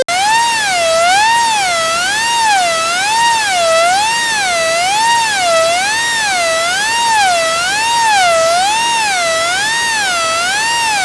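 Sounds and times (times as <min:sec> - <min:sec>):
grill alarm: 0:00.0 - 0:11.0.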